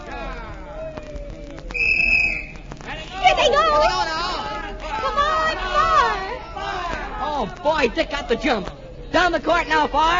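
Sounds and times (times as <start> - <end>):
noisy crowd chatter at a basketball game: 0.0 - 10.1
referee's whistle blast during a basketball game: 1.7 - 2.6
speech: 7.7 - 10.1.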